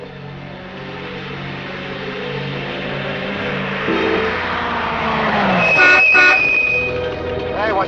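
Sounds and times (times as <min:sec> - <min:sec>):
engine rumble: 0:00.0 - 0:07.8
road noise: 0:00.0 - 0:07.8
car horn honking: 0:03.9 - 0:04.5, 0:05.6 - 0:07.0.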